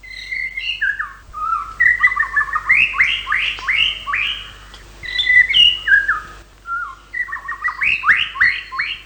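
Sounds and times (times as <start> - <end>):
male white-rumped shama singing trills and whistles to attract a female: 0.0 - 9.0.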